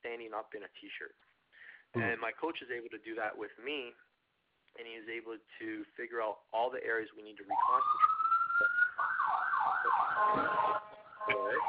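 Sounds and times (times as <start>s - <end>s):
speech: 0.3s - 4.1s, 4.7s - 8.8s, 10.2s - 11.6s
ambulance siren wailing outside: 7.5s - 11.6s.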